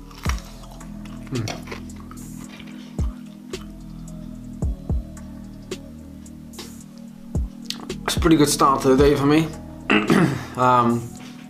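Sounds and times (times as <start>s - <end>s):
crunchy bacon being chewed: 0.0s - 4.0s
speech: 1.3s - 1.7s, 8.2s - 11.2s.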